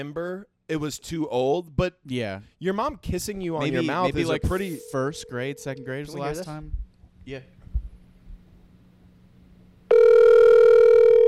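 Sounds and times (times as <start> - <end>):
speech: 0.0 - 7.6
loud steady telephone tone: 4.0 - 6.4, 9.9 - 11.2.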